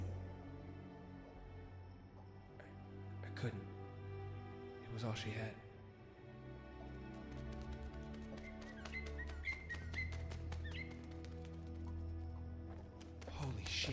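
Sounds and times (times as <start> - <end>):
low sustained musical drone: 0.0 - 13.9
speech: 3.2 - 3.8, 4.9 - 5.7
bird chirping indoors: 7.1 - 11.8
sharp clicks and taps: 7.1 - 11.9.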